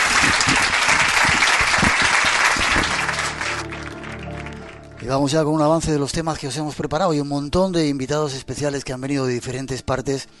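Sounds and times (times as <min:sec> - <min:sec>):
audience applause from a sizable crowd: 0:00.0 - 0:05.0
speech: 0:05.0 - 0:10.3.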